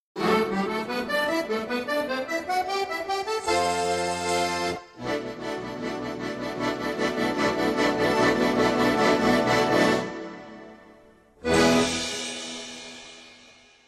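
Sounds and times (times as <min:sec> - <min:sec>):
accordion: 0:00.2 - 0:13.1.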